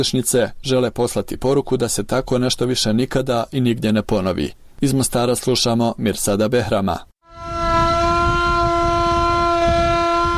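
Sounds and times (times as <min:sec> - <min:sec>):
speech: 0:00.0 - 0:07.1
wartime air-raid siren sounding the general-danger alarm in Mostar: 0:07.2 - 0:10.3.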